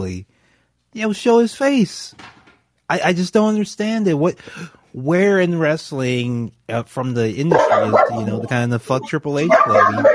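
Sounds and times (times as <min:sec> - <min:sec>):
speech: 0:00.0 - 0:00.3, 0:00.9 - 0:02.3, 0:02.9 - 0:10.1
dogs barking: 0:07.5 - 0:08.6, 0:09.4 - 0:10.1.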